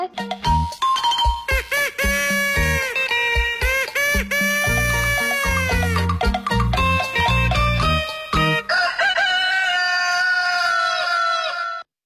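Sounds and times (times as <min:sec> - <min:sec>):
musical opening jingle for a morning sports show: 0:00.1 - 0:08.7
rooster crowing: 0:08.6 - 0:11.9.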